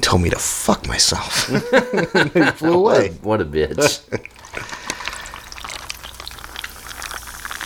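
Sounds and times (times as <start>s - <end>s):
speech: 0.1s - 4.7s
laughter: 1.3s - 4.4s
iced tea pouring into a glass: 4.2s - 7.6s.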